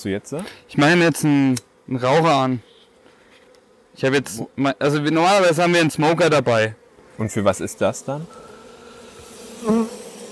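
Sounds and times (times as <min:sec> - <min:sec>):
speech: 0:00.0 - 0:02.7, 0:04.0 - 0:08.4, 0:09.6 - 0:10.0
honeybees buzzing at an opened hive: 0:00.0 - 0:10.3.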